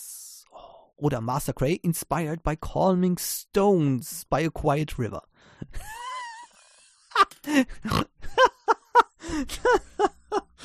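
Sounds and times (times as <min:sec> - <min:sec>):
speech: 0:01.0 - 0:06.1, 0:07.2 - 0:08.5, 0:09.3 - 0:10.2
laughter: 0:05.8 - 0:10.6
person grunting: 0:07.5 - 0:08.1.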